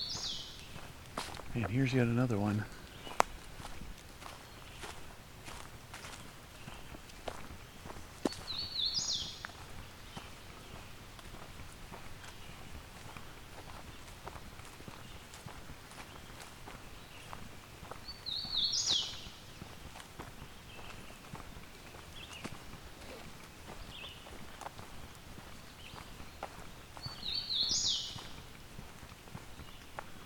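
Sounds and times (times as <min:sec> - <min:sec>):
hooded warbler singing at the Fisher Tract: 0:00.0 - 0:05.1, 0:06.5 - 0:11.0, 0:16.0 - 0:19.8, 0:20.5 - 0:28.4
footsteps crunching while walking: 0:00.0 - 0:30.2
speech: 0:01.6 - 0:02.8.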